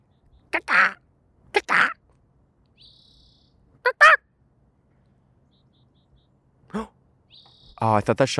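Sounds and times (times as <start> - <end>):
bird giving harsh squawking cries: 0.0 - 2.0, 2.8 - 4.3, 5.5 - 8.0
speech: 7.8 - 8.3.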